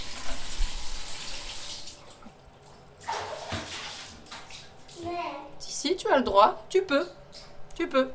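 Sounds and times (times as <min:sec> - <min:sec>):
tap water running and overflowing: 0:00.0 - 0:05.4
speech: 0:05.8 - 0:07.2, 0:07.8 - 0:08.1.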